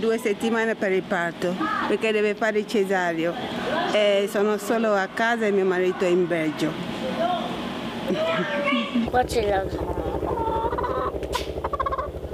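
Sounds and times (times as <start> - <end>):
speech: 0.0 - 6.9, 8.1 - 9.9
hen cackling after laying an egg: 9.9 - 12.2.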